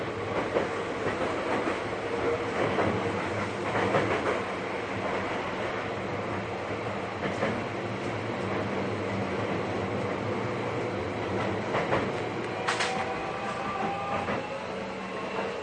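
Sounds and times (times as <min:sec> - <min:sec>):
Seibu 40000 series S-Train commuter train rail noise in Japan: 0:00.0 - 0:15.6
commuter train clattering over rail joints: 0:00.3 - 0:05.4, 0:11.3 - 0:14.4.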